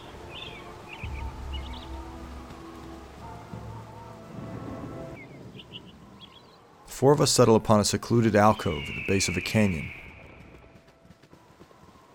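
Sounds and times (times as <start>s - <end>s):
small birds chirping faintly: 0.0s - 3.8s, 5.2s - 6.8s, 8.1s - 10.8s
steady rain hissing: 0.0s - 7.4s, 8.6s - 12.1s
speech: 7.0s - 10.0s.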